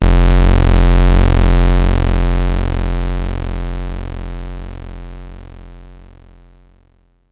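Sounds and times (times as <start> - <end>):
multisampled bass instrument playing F1: 0.0 - 5.8.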